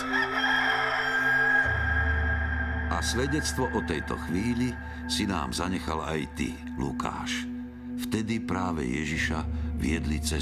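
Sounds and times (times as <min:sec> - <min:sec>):
rooster crowing: 0:00.0 - 0:02.8
speech: 0:02.9 - 0:10.3.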